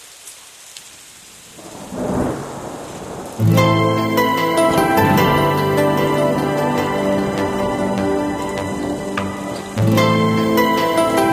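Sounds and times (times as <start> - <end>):
steady rain falling outside: 0.0 - 11.3
loud music: 3.4 - 11.3.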